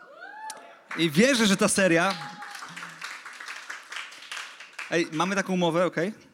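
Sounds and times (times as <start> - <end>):
audience clapping in a church: 0.9 - 5.6
speech: 1.0 - 2.3, 4.9 - 6.2.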